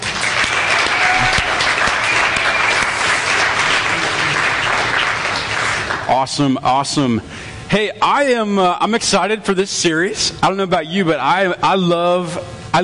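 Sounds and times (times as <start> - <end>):
audience applause: 0.0 - 6.2
speech: 6.1 - 12.8.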